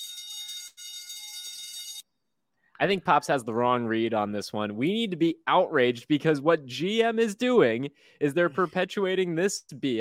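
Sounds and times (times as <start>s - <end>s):
harsh electronic consumer alarm buzzer: 0.0s - 2.1s
speech: 2.8s - 9.9s.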